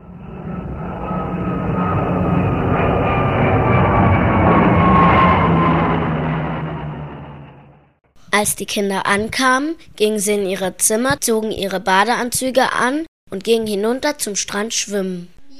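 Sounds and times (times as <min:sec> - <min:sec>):
airplane engine roar with whining tone: 0:00.0 - 0:08.0
speech: 0:08.4 - 0:15.3.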